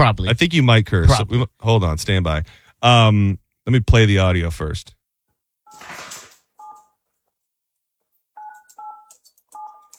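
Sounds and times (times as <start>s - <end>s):
speech: 0.0s - 5.0s
toy phone beeping electronically: 5.7s - 5.9s, 6.6s - 6.9s, 8.4s - 9.9s.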